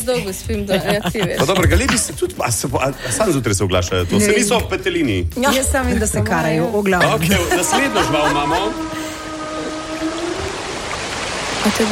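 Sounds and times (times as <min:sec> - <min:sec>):
laughter: 0:00.0 - 0:04.8, 0:07.0 - 0:09.3
speech: 0:00.0 - 0:09.0, 0:11.6 - 0:11.9
whale vocalization with low sustained tonal moan: 0:07.1 - 0:11.3.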